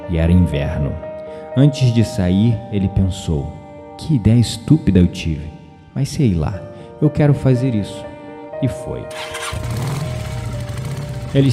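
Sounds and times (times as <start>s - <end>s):
speech: 0.1s - 10.0s, 11.3s - 11.5s
motorcycle engine starting and rumbling: 9.1s - 11.5s.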